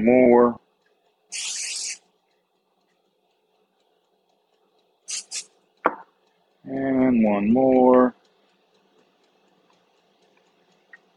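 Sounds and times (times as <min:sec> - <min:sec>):
speech: 0:00.0 - 0:00.6, 0:01.3 - 0:01.7, 0:06.6 - 0:08.2
aerosol vegetable cooking spray being sprayed: 0:01.3 - 0:02.0, 0:05.1 - 0:05.5.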